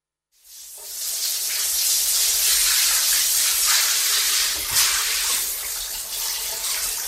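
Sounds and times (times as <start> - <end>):
shower water running: 0.4 - 7.0
water splashing: 3.3 - 6.6.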